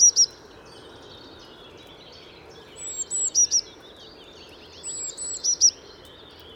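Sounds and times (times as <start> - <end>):
Eurasian blue tit calling: 0.0 - 0.4, 2.7 - 3.9, 4.7 - 5.9
steady background noise: 0.0 - 6.5.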